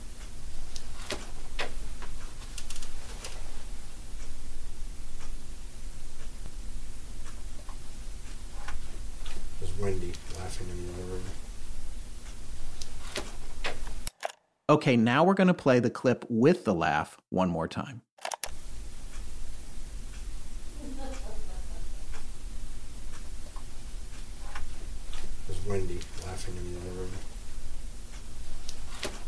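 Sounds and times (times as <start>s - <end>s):
room noise hiss: 0.0s - 14.1s, 18.5s - 29.2s
wall clock ticking: 0.0s - 14.1s, 18.5s - 29.2s
voice-like sound: 9.6s - 11.4s, 25.5s - 27.2s
speech: 14.7s - 18.1s.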